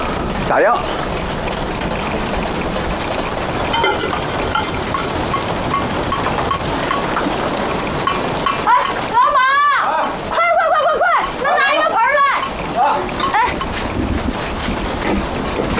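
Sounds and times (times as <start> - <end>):
steady rain: 0.0 - 15.7
speech: 0.5 - 1.2, 3.9 - 4.9
water dripping through the roof indoors: 3.7 - 7.3, 8.0 - 9.1, 11.2 - 13.8.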